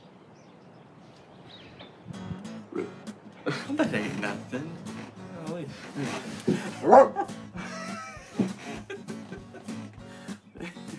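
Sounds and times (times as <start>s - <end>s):
speech: 2.8s - 4.9s, 5.6s - 7.3s
laughter: 3.4s - 5.0s, 5.7s - 10.9s
dog barking and yipping: 6.7s - 7.3s.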